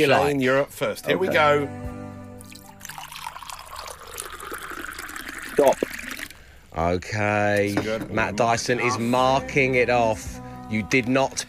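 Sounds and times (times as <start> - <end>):
speech: 0.0 - 1.9, 5.6 - 5.9, 6.8 - 11.4
water pouring into a container: 2.4 - 6.7.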